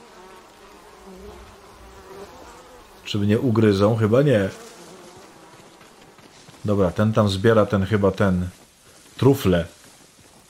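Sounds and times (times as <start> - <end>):
bees buzzing low over grass: 0.0 - 6.4
speech: 3.1 - 4.6, 6.6 - 8.6, 9.2 - 9.8.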